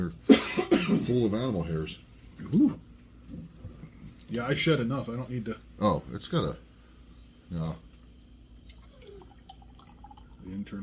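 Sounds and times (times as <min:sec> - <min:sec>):
speech: 0:00.0 - 0:00.4, 0:01.1 - 0:03.6, 0:04.3 - 0:06.7, 0:07.5 - 0:07.8, 0:10.4 - 0:10.8
faint drips: 0:07.9 - 0:10.8
beer pouring into a glass: 0:08.6 - 0:10.8.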